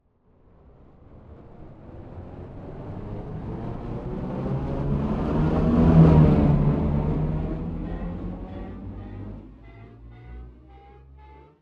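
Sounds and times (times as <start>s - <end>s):
abstract spaceship flyby ascending: 2.5s - 11.2s.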